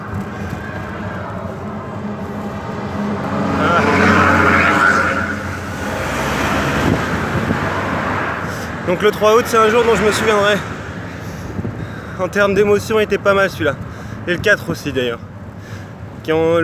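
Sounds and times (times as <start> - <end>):
vehicle passing: 0.0 - 11.9
road traffic with cars heard while cycling: 0.0 - 16.6
speech: 8.9 - 10.8, 12.2 - 15.3, 16.2 - 16.6.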